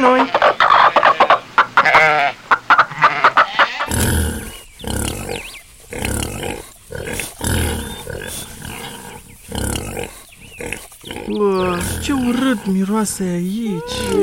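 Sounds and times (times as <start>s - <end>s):
speech: 0.0s - 0.4s, 12.6s - 14.2s
chicken squawks and chattering calls: 0.0s - 4.1s
flock of chickens clucking while being fed: 0.0s - 14.2s.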